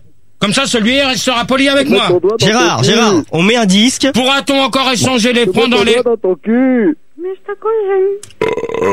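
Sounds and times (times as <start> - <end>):
speech: 0.4 - 8.9
man burping: 8.4 - 8.9.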